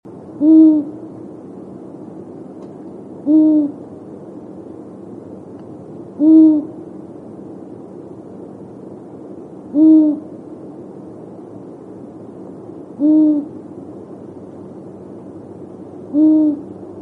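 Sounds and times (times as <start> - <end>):
owl: 0.4 - 1.0, 3.2 - 3.8, 6.2 - 6.8, 9.7 - 10.3, 13.0 - 13.6, 16.1 - 16.8.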